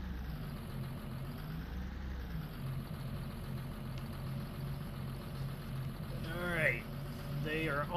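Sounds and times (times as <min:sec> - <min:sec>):
diesel farm tractor engine idling: 0:00.0 - 0:07.9
speech: 0:07.6 - 0:07.9.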